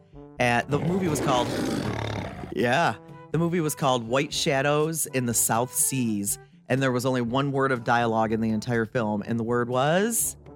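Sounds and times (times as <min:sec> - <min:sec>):
speech: 0:00.2 - 0:10.4
lion roaring: 0:00.7 - 0:02.6.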